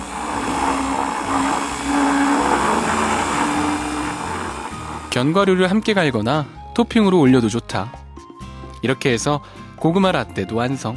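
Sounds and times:
blender blending baked sweet potato, warmed milk and honey: 0.0 - 5.6
speech: 5.2 - 8.0, 8.8 - 10.9.

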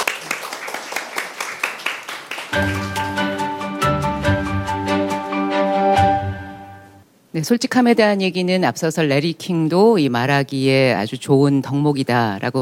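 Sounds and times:
audience applause for a lecture: 0.0 - 3.8
speech: 2.6 - 3.0, 7.4 - 12.5
sustained music with steady tones: 2.6 - 7.0.

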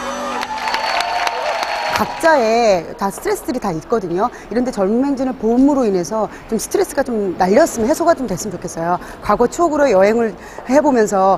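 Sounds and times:
crowd applauding with dense clapping: 0.0 - 2.6
speech: 2.0 - 11.3.

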